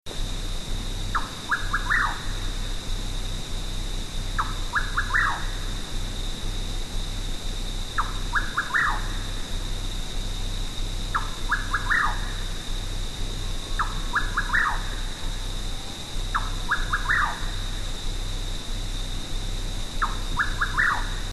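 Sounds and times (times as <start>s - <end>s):
Rufous Nightjar calling in South America: 1.0s - 21.3s.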